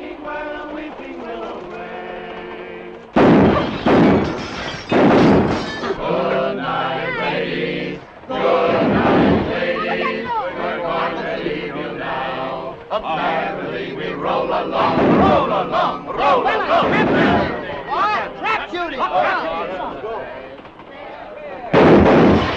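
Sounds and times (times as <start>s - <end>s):
gunfire during target practice: 3.1s - 6.0s, 8.5s - 9.6s, 14.7s - 17.8s, 21.7s - 22.5s
people shouting: 5.8s - 20.4s
excited crowd voices: 5.8s - 21.8s.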